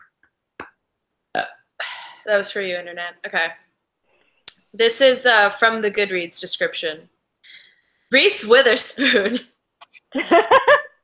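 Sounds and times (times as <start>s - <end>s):
person burping: 1.3s - 1.7s
speech: 2.3s - 3.6s, 4.7s - 7.2s, 8.1s - 9.5s, 10.1s - 10.8s.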